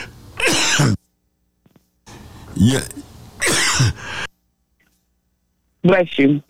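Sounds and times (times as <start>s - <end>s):
sneeze: 0.0s - 1.0s, 2.5s - 4.3s
speech: 0.8s - 1.0s, 2.6s - 3.1s, 3.8s - 4.2s, 5.8s - 6.4s.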